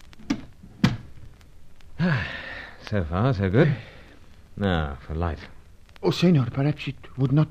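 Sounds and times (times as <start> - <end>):
door pushed shut: 0.3 - 1.1
speech: 2.0 - 3.9, 4.6 - 7.5.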